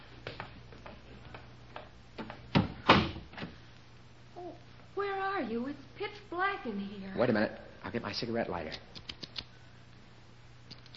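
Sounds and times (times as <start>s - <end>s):
low steady hum: 0.0s - 10.9s
cellar door closing and latching: 2.5s - 3.3s
speech: 5.6s - 9.0s.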